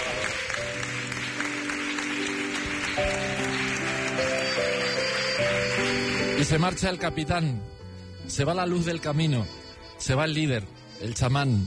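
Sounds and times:
audience applause: 0.0s - 6.7s
speech: 6.5s - 11.6s.

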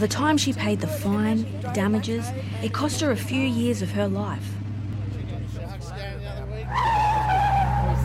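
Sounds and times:
speech: 0.0s - 4.6s
car engine rumbling: 0.0s - 8.0s
car tires screeching skidding around a corner: 5.8s - 8.0s.

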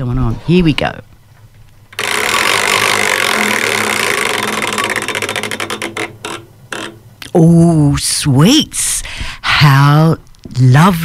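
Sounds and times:
speech: 0.0s - 1.1s, 7.4s - 11.0s
prize wheel spinning with whirring rattle of clicks: 1.9s - 7.5s.

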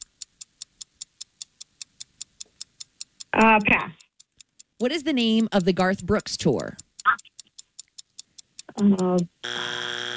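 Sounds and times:
ticking countdown: 0.0s - 9.4s
speech: 3.3s - 4.0s, 4.8s - 6.8s, 8.8s - 9.7s
loud harsh game show buzzer signalling time is up: 9.4s - 10.1s.

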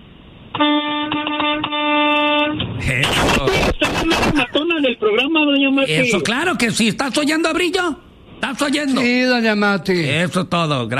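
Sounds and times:
speech: 0.6s - 0.8s, 2.8s - 10.9s
bus horn honking: 0.6s - 2.7s.

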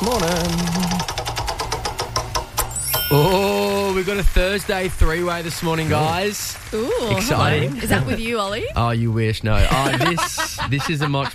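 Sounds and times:
speech: 0.0s - 0.9s, 3.1s - 11.3s
game-selection wheel being spun, clicking: 0.0s - 8.6s
laughter: 6.9s - 8.4s, 9.5s - 11.3s.

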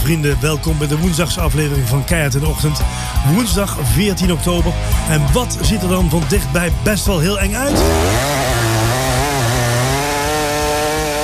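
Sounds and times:
speech: 0.1s - 8.5s
chainsaw running: 7.5s - 11.2s.

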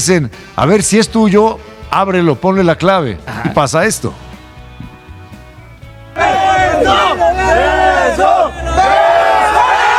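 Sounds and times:
speech: 0.0s - 4.2s
crowd cheering and chanting: 6.2s - 9.9s.

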